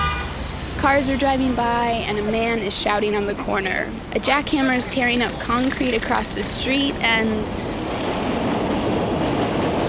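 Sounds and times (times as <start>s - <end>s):
train passing overhead through a busy city street: 0.1s - 9.8s
speech: 0.9s - 7.7s.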